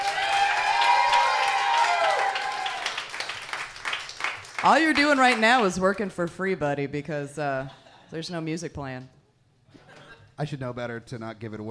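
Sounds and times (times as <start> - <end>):
crowd cheers and whoops: 0.0 - 3.1
audience applause: 0.0 - 5.7
speech: 4.6 - 9.2, 10.4 - 11.6.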